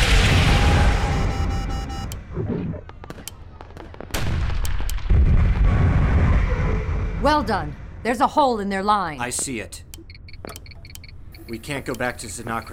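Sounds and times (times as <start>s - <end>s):
missile strike explosion in a battle scene: 0.0s - 1.3s, 5.1s - 8.0s
sharp cracks and crackles: 2.8s - 5.8s
speech: 7.3s - 10.6s, 11.5s - 12.7s.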